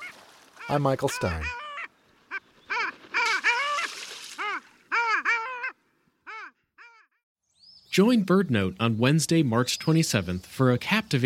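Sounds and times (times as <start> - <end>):
long-tailed duck nasal yodeling calls: 0.0 - 7.1
speech: 0.7 - 1.6, 8.0 - 11.2.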